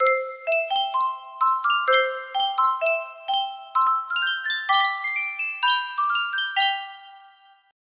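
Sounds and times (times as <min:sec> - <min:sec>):
miniature music box melody: 0:00.0 - 0:07.7.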